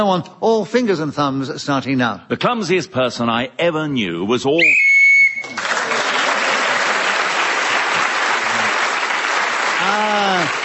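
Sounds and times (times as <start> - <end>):
speech: 0.0 - 5.6
short shrill whistle blast ending the round: 4.6 - 5.6
loud sustained audience applause: 5.4 - 10.6.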